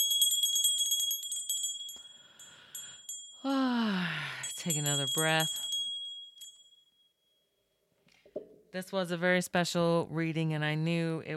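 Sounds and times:
meditation bells jingling: 0.0s - 7.9s
speech: 4.6s - 5.6s, 8.7s - 11.3s.

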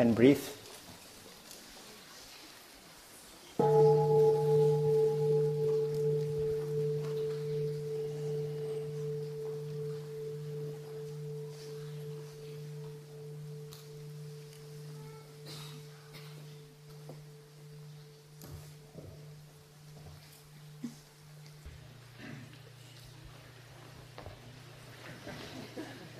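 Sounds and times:
speech: 0.0s - 0.6s
single bell struck and ringing: 3.6s - 21.7s.

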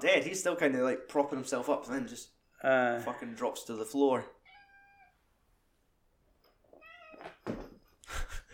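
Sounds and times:
speech: 0.0s - 4.4s
cat meowing: 4.4s - 5.2s, 6.7s - 7.4s.

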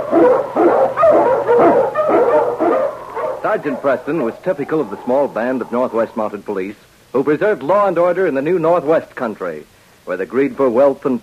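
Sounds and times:
Eskimo sled dog barking: 0.0s - 6.1s
speech: 3.6s - 11.2s.

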